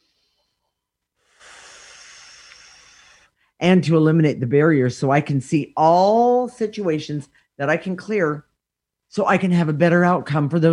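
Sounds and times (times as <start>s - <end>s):
long breath drawn in by a person: 0.0s - 3.6s
speech: 3.6s - 8.5s, 9.1s - 10.7s.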